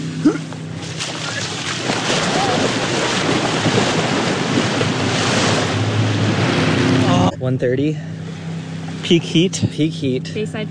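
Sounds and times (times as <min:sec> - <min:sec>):
steady wind rumbling across the microphone: 0:00.0 - 0:07.4
lapping water and small waves at a lakeshore beach: 0:00.0 - 0:10.6
speech: 0:00.2 - 0:00.4, 0:07.5 - 0:08.2, 0:09.1 - 0:10.6.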